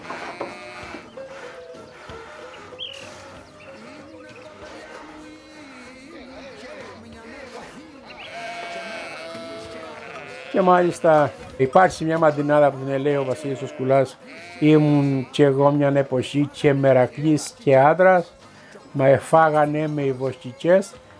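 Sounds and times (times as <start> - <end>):
sheep bleating: 0.0 - 11.4, 12.2 - 15.9
farmyard hum: 0.0 - 21.1
speech: 10.6 - 21.0.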